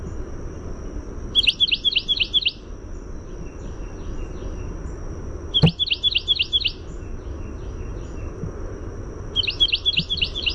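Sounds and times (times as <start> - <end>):
Carolina wren song of rapid rolling repeated phrases: 0.0 - 8.4, 9.2 - 10.5
steady high insect whine: 0.0 - 10.5.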